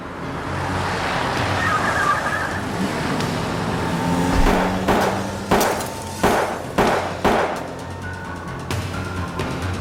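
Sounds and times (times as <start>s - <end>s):
car and road noise on a morning drive: 0.0s - 9.7s
gunshots fired from another car: 4.4s - 7.8s.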